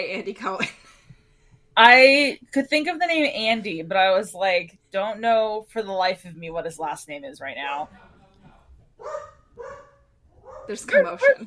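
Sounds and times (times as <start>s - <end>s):
speech: 0.0s - 0.8s, 1.8s - 8.1s, 10.7s - 11.4s
dogs barking: 9.0s - 11.0s.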